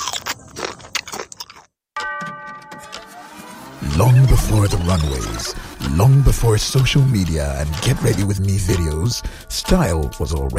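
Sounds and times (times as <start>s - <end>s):
person biting into a creamy crunchy cookie: 0.0s - 1.8s
speech: 3.9s - 10.5s.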